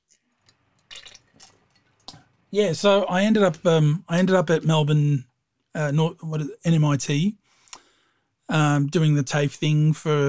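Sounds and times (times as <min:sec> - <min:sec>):
person sipping water: 0:00.4 - 0:02.5
speech: 0:02.5 - 0:07.4, 0:08.5 - 0:10.2.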